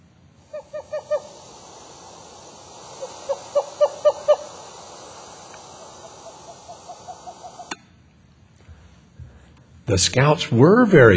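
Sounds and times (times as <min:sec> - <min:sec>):
steady hiss: 0:00.0 - 0:11.1
Western screech owl giving whistled toots: 0:00.4 - 0:07.8
speech: 0:09.9 - 0:11.1.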